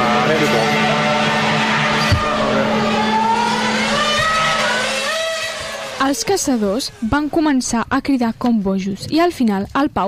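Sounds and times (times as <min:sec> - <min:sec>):
car engine roaring at full throttle driving toward another car: 0:00.0 - 0:07.1
tire squeal: 0:00.2 - 0:07.2
speech: 0:06.1 - 0:10.0.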